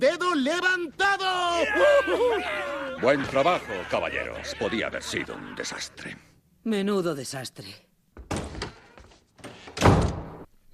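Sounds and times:
speech: 0.0 - 8.3
laughter: 1.6 - 6.2
door slamming shut with a heavy booming thud: 9.7 - 10.4.

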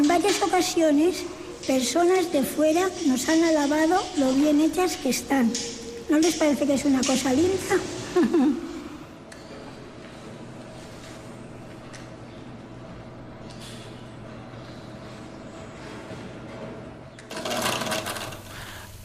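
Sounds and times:
wafer-making machinery clacks: 0.0 - 8.3, 15.8 - 18.6
wafer-making machinery whirring and humming in a convent: 0.0 - 19.0
speech: 0.2 - 8.6
laughter: 8.0 - 9.1.

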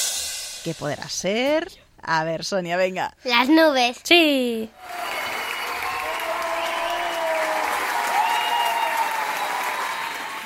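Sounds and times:
speech: 0.6 - 5.1
audience ovation applause: 4.8 - 10.4
cheers and whistles: 4.8 - 10.4.

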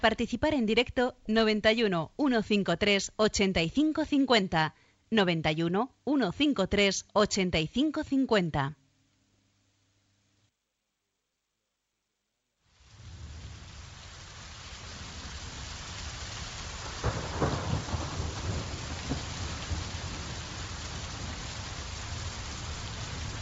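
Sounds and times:
speech: 0.0 - 8.8
steady heavy rain: 12.7 - 23.4
thunder rumbling and cracking: 12.9 - 23.4.

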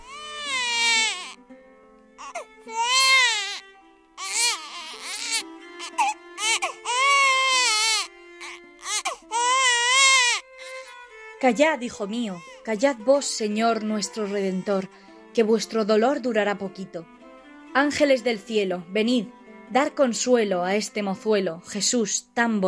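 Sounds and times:
baby crying: 0.0 - 1.4, 2.2 - 11.1, 12.0 - 13.0
speech: 11.4 - 17.2, 17.8 - 22.6.

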